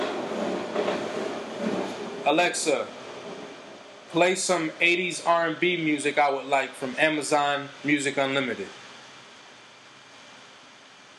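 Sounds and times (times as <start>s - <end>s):
train rumbling past: 0.0s - 6.7s
speech: 2.3s - 3.0s, 4.1s - 8.8s.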